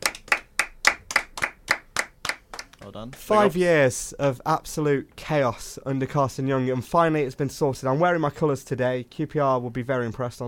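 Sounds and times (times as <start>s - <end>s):
hands clapping in celebration: 0.0s - 3.5s
speech: 2.8s - 10.4s.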